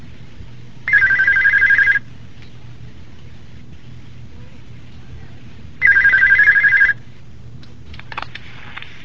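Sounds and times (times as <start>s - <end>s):
telephone ringing: 0.9s - 2.1s, 5.8s - 7.0s.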